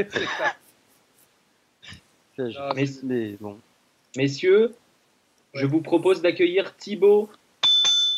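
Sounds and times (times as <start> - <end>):
speech: 0.0 - 0.6, 1.8 - 4.8, 5.5 - 7.4
guest-arrival bell dings rung to welcome a guest: 7.6 - 8.1.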